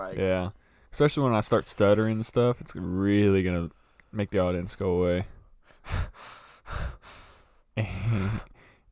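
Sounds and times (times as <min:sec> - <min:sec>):
speech: 0:00.0 - 0:06.1
heavy breathing into the microphone: 0:05.6 - 0:08.9.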